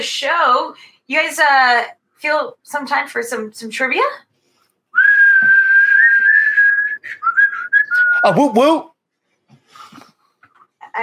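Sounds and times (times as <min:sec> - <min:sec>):
speech: 0:00.0 - 0:04.3, 0:08.2 - 0:08.9
person whistling a high note: 0:05.0 - 0:08.4.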